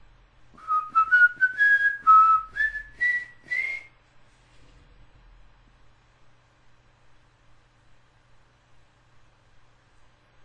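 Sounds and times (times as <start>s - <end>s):
person whistling a short wavering tune: 0.6s - 3.9s.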